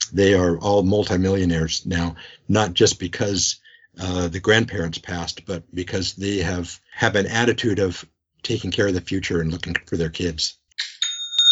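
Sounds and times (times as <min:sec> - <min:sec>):
speech: 0:00.1 - 0:11.0
online store new-sale notification chime: 0:10.8 - 0:11.5.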